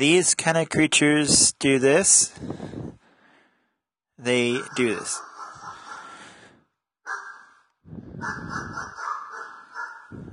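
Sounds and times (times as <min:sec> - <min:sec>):
speech: 0:00.0 - 0:02.9, 0:04.2 - 0:05.3, 0:07.9 - 0:08.9
dogs barking harshly: 0:04.4 - 0:10.3.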